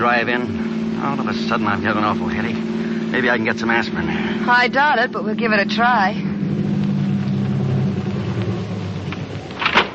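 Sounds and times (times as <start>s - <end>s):
speech: 0.0s - 6.2s
car engine idling while parked at a drive-in: 0.0s - 9.9s.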